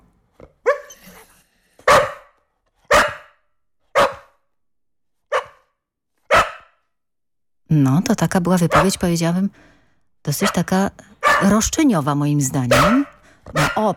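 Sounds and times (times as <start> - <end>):
dog barking: 0.6 - 1.1, 1.8 - 4.4, 5.3 - 6.8, 8.7 - 9.0, 10.4 - 11.6, 12.7 - 13.9
speech: 7.7 - 13.9.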